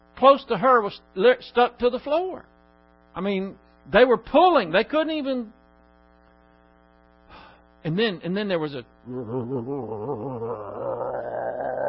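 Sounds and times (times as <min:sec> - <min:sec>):
speech: 0:00.2 - 0:02.5, 0:03.2 - 0:05.6, 0:07.8 - 0:11.2
voice imitating a low growling roar: 0:09.1 - 0:11.8.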